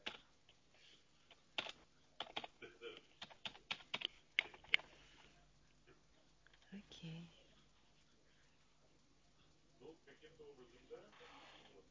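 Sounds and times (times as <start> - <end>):
typing a password on a computer keyboard: 0.0 - 0.3, 1.3 - 2.6, 3.2 - 4.9.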